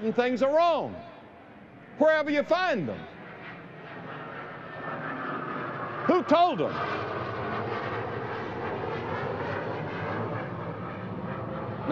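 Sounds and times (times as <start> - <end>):
speech: 0.0 - 1.1, 2.0 - 3.1, 6.1 - 7.1
low-flying airplane engine roaring overhead: 0.0 - 11.9.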